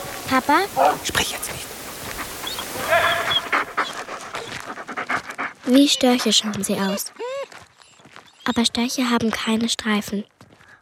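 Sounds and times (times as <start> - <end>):
speech: 0.3 - 1.7, 5.7 - 7.2, 8.5 - 10.3
dog panting: 0.8 - 8.9.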